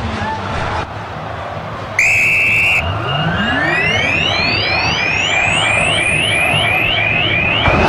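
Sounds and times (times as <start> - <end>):
loud stadium crowd of football fans roaring: 0.0 - 7.8
referee blowing the final whistle in a stadium: 2.0 - 7.8.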